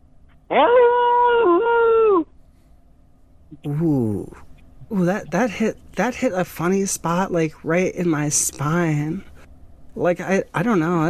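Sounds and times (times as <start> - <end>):
speech: 0.5 - 0.8, 3.6 - 9.3, 10.0 - 11.0
person imitating a wolf howl: 0.5 - 2.3.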